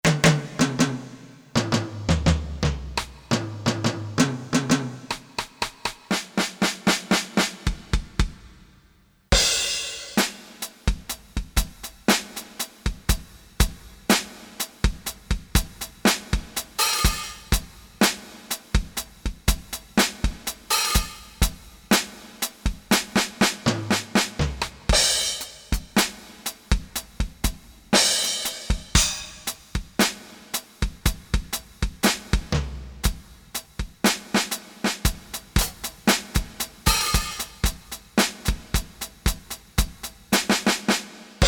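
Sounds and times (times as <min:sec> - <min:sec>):
Korg DSS-1 drum kit: 0:00.0 - 0:41.4.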